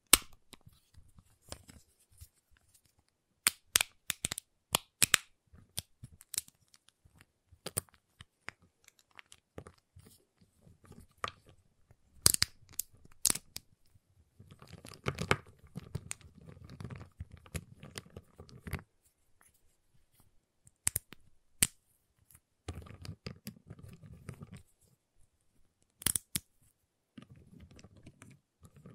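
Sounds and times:
giant chocolate bar clicking and snapping: 0.0s - 0.6s, 3.4s - 6.8s, 12.2s - 13.6s, 20.7s - 21.8s, 25.9s - 26.5s
crackling and crinkling: 0.0s - 28.9s.

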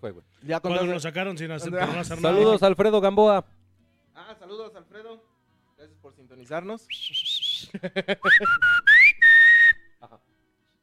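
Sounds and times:
speech: 0.0s - 3.6s, 4.2s - 8.9s
person whistling: 6.9s - 10.0s.

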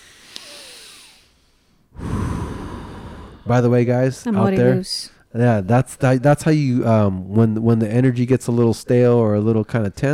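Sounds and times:
deep breath: 0.0s - 3.6s
speech: 3.5s - 10.1s.

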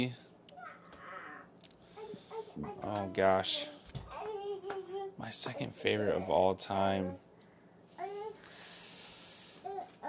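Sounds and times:
speech: 0.0s - 0.2s, 2.6s - 3.8s, 5.2s - 7.2s
toddler babbling: 0.6s - 6.3s, 8.0s - 8.4s, 9.6s - 10.0s
steady soft hiss: 1.7s - 10.0s.

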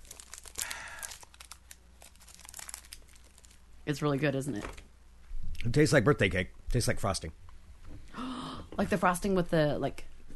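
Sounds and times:
Kit Kat candy bar wrapper crinkling: 0.0s - 3.7s
speech: 3.9s - 4.9s, 5.6s - 7.4s, 8.8s - 10.1s.

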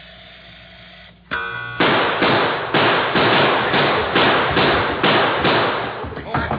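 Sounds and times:
gunshots in a shootout: 1.8s - 6.1s.

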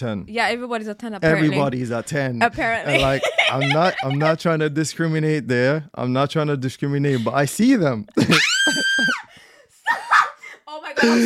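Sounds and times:
speech: 0.0s - 9.2s, 11.0s - 11.2s
laughter: 2.9s - 4.4s
person screaming: 8.3s - 9.2s.

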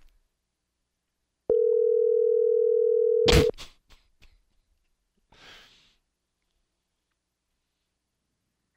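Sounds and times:
electronic phone ringing tone: 1.5s - 3.5s
soft breathy exhale: 5.3s - 6.0s.

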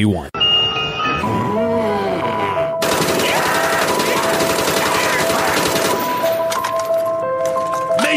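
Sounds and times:
game music: 0.4s - 8.1s
video game gunfire while shooting hordes of Nazi zombies: 2.8s - 6.2s.

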